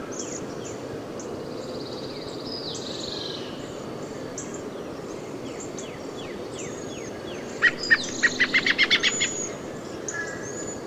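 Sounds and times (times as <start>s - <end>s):
steady background hiss: 0.0s - 10.8s
American robin giving sharp call notes: 7.6s - 9.5s.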